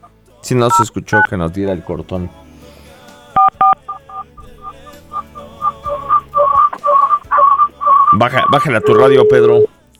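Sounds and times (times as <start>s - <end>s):
speech: 0.4s - 2.4s, 8.2s - 9.7s
telephone keypad dialing tones during a redial: 0.7s - 1.3s, 3.4s - 9.7s.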